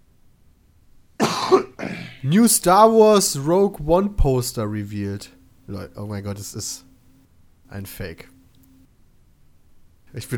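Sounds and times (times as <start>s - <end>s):
harsh raspy painful coughs: 1.2s - 2.3s
speech: 2.2s - 6.9s, 7.7s - 8.3s, 10.1s - 10.3s.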